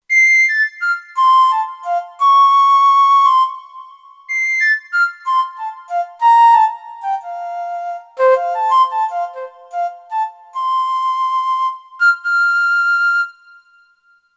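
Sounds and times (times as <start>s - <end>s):
synthesized baroque flute on a keyboard synthesizer: 0.1s - 14.3s.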